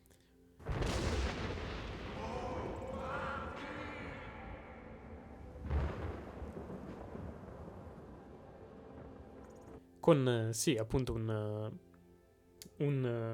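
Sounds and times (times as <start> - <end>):
loud blasts: 0.6 - 4.5, 5.4 - 8.3
heavy thunder-like rumbling: 0.7 - 9.8
deep booming chorus of voices calling out in unison: 2.1 - 5.3
speech: 10.0 - 11.9, 12.8 - 13.3.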